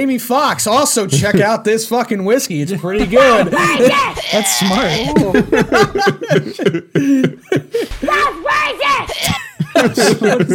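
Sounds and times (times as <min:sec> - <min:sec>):
speech: 0:00.0 - 0:10.5
laughter: 0:01.1 - 0:01.6, 0:03.0 - 0:10.5
child screaming loudly in strained wavering bursts: 0:03.2 - 0:05.2, 0:08.0 - 0:09.4
child coughing or sputtering: 0:03.4 - 0:05.2, 0:08.1 - 0:09.6.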